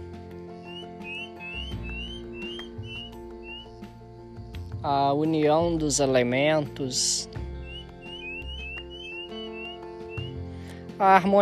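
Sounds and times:
steady humming tonal backdrop: 0.0s - 4.3s, 7.4s - 10.6s
several birds singing with short bright chirps and whistles: 0.5s - 4.7s, 7.3s - 10.5s
speech: 4.8s - 7.4s, 11.0s - 11.4s.

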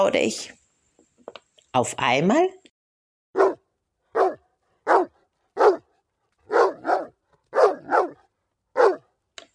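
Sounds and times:
speech: 0.0s - 0.6s, 1.8s - 2.6s
dog barking loudly: 3.3s - 9.2s.

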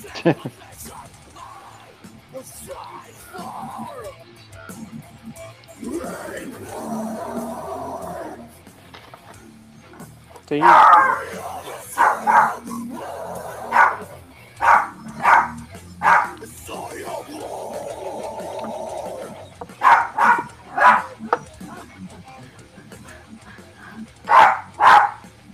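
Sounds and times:
laughter: 0.0s - 1.6s, 5.8s - 8.5s, 10.5s - 24.4s
murmuring: 0.0s - 25.5s
speech: 0.2s - 0.7s, 10.5s - 12.8s
small dog barking and yipping: 10.5s - 12.8s, 13.4s - 16.4s, 19.3s - 21.6s, 24.2s - 25.3s.

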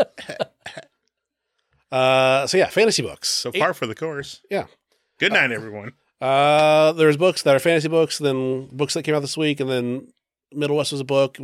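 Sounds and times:
person coughing: 0.0s - 1.0s
speech: 1.9s - 11.4s.

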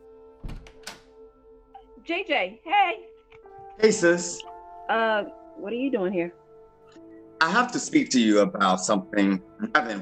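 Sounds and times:
door latch thunk: 0.4s - 1.2s
speech: 2.1s - 3.2s, 3.8s - 6.4s, 7.4s - 10.0s.

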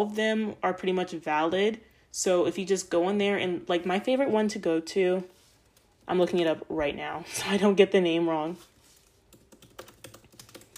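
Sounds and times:
speech: 0.0s - 5.4s, 6.1s - 8.7s
typing on a computer keyboard: 9.3s - 10.7s.

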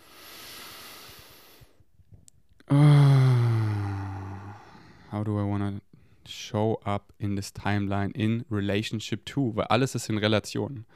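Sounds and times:
deep inhale and loud voiced sigh: 0.0s - 1.8s, 2.6s - 5.1s
speech: 5.2s - 10.9s.

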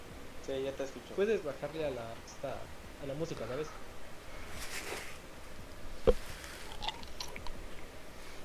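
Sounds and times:
steady low hiss: 0.0s - 8.4s
speech: 0.5s - 3.9s
crunchy chewing on frozen cranberry juice: 6.3s - 7.5s.

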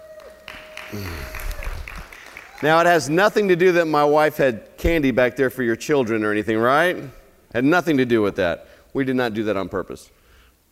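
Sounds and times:
crowd applauding: 0.0s - 3.6s
faint steady hum in the room: 0.0s - 10.7s
speech: 0.9s - 1.4s, 2.6s - 10.2s.

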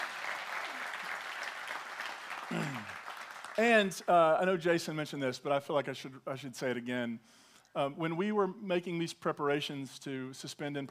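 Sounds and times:
crowd clapping for the sound tech: 0.0s - 4.1s
speech: 3.6s - 10.8s.

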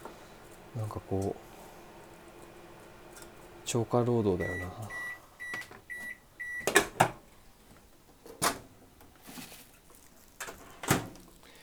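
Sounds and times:
speech: 0.8s - 1.5s, 3.7s - 5.0s
short electronic beeps: 4.4s - 6.7s
frozen broccoli pieces clattering into a pot: 9.1s - 11.6s.

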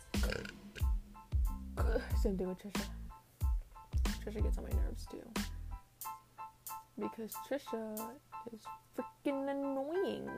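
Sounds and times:
person burping deep rumbling burps: 0.2s - 1.0s
speech: 1.9s - 3.0s, 4.2s - 5.6s, 7.0s - 10.3s.

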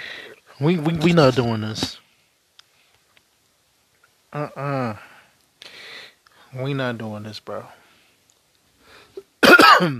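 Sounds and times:
soft breath: 0.0s - 0.4s, 5.0s - 6.6s, 7.7s - 9.2s
speech: 0.6s - 2.0s, 4.3s - 5.1s, 6.5s - 7.8s, 9.8s - 9.9s
throat clearing: 9.2s - 9.9s.

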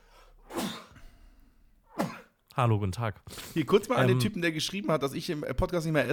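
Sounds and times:
person sneezing: 0.4s - 1.0s, 1.9s - 2.4s
speech: 2.6s - 6.1s.

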